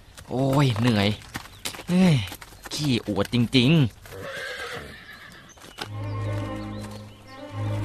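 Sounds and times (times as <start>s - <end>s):
horse hooves clopping as it is walked along: 0.0s - 7.8s
speech: 0.3s - 1.3s, 1.9s - 4.0s
richly adorned horse whinnying with a long wavering neigh: 4.1s - 6.4s.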